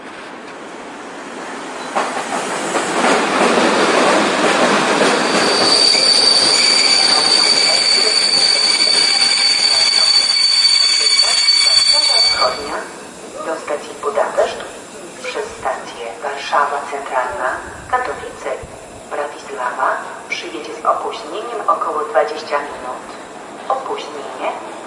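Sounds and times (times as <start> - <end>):
train pulling in on a station track: 0.0 - 24.8
high-pitched train wheel squeal: 5.1 - 12.8.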